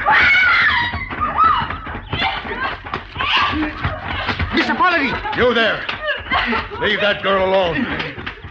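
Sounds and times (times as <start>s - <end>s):
woman screaming: 0.0s - 2.6s, 3.2s - 3.8s
laughter: 0.5s - 8.4s
speech: 5.4s - 8.2s.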